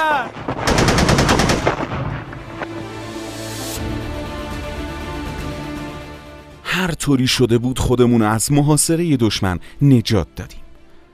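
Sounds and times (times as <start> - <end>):
automatic machine gun fire from enemy positions on the heights: 0.4 - 2.4
speech: 6.8 - 10.6.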